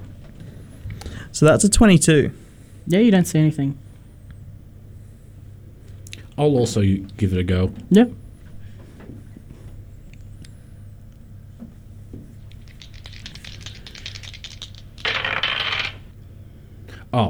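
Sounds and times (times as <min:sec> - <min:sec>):
speech: 0:01.3 - 0:03.8, 0:06.4 - 0:08.2
dice clattering across a hard table: 0:12.5 - 0:16.2.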